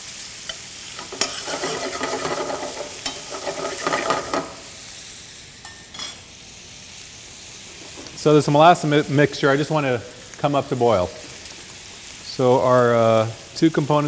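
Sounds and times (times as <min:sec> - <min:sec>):
bacon sizzling in a pan while being browned: 0:00.0 - 0:14.0
stirring scrapes in a pan: 0:01.0 - 0:04.6, 0:07.7 - 0:08.3
speech: 0:08.2 - 0:11.2, 0:12.4 - 0:14.0.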